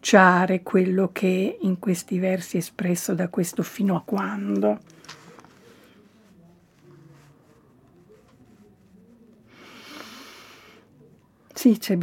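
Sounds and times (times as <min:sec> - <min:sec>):
speech: 0:00.0 - 0:05.2, 0:11.6 - 0:12.0
quiet murmuring: 0:02.0 - 0:12.0
deep airy breath drawn in close to the microphone: 0:09.5 - 0:10.9.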